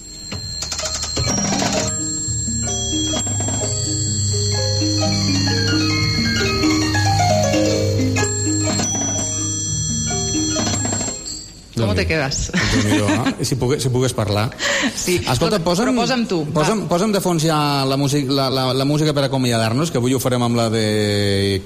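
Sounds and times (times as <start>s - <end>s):
antique Swiss music box from 1820 playing a tinkling melody: 0.2s - 11.7s
speech: 12.0s - 21.6s
laughter: 12.5s - 13.6s.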